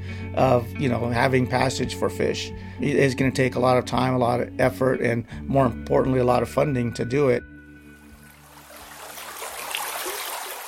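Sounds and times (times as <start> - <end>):
speech: 0.4 - 7.5
mountain stream flowing over rocks: 8.0 - 10.6.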